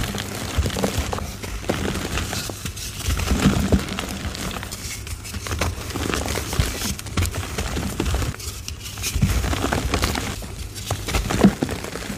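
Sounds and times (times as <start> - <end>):
soft gym chalk crumbling: 0.0 - 12.1.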